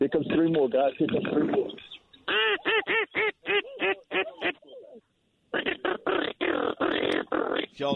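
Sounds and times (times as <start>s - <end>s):
speech: 0.0s - 2.6s, 7.8s - 7.9s
duck call blown by a hunter in a duck blind: 2.3s - 4.6s, 5.5s - 7.8s.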